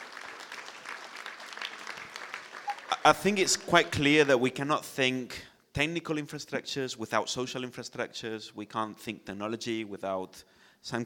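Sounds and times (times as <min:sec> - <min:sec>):
crowd applauding steadily: 0:00.0 - 0:03.4
speech: 0:02.9 - 0:11.0.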